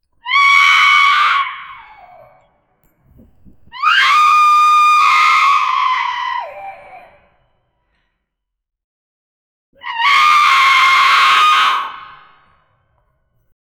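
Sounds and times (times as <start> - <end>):
deep scary screaming: 0.2 - 2.6, 3.7 - 7.5, 9.8 - 12.5.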